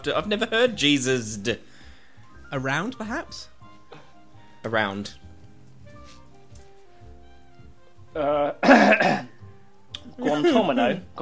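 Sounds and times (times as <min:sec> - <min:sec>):
speech: 0:00.0 - 0:01.7, 0:02.5 - 0:03.5, 0:04.6 - 0:05.2, 0:08.2 - 0:09.3, 0:10.1 - 0:11.2
person clearing a phlegmy throat: 0:08.2 - 0:09.4.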